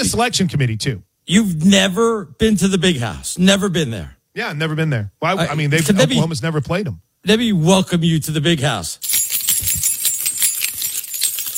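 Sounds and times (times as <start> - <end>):
speech: 0.0 - 9.8
crowd shaking keys at a college football game in a huge stadium: 9.0 - 11.5.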